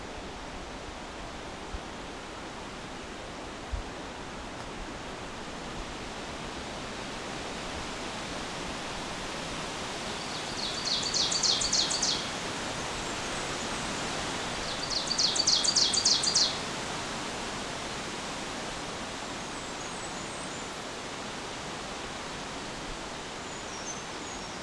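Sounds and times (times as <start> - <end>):
steady hiss of noise: 0.0 - 24.6
Blackburnian warbler singing: 10.2 - 12.3, 14.6 - 16.6, 23.5 - 24.6.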